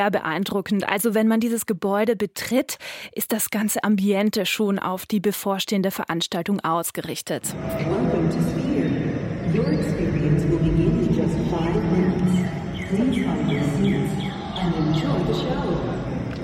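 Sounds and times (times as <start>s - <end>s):
speech: 0.0s - 8.9s, 9.6s - 16.0s
birds chirping: 7.6s - 16.4s.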